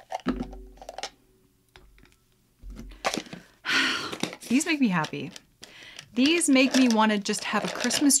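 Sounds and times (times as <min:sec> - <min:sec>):
dried orange slice crackling and clicking as it is picked up: 0:04.1 - 0:08.1
speech: 0:04.5 - 0:05.5, 0:06.1 - 0:08.1.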